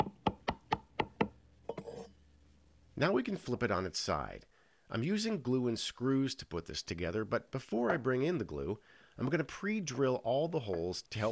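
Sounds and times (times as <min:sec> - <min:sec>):
hammer tapping a clamped wooden shelf into a wooden cabinet frame: 0:00.0 - 0:01.4
speech: 0:03.0 - 0:11.2.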